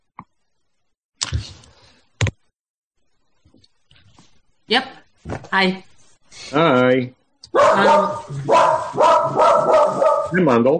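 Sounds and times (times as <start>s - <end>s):
speech: 4.7s - 5.9s, 6.5s - 10.7s
dog barking loudly with harsh strained barks: 7.5s - 10.7s.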